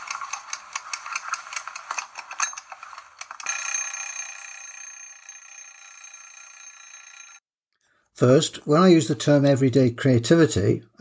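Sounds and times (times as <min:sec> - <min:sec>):
kitchen egg timer metallic ringing: 0:03.4 - 0:07.5
speech: 0:08.2 - 0:10.9.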